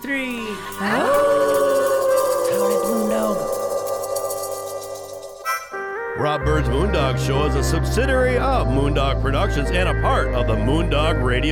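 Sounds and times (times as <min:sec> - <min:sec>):
speech: 0:00.0 - 0:01.1, 0:06.4 - 0:11.5
several people howling together like dogs: 0:00.8 - 0:05.4.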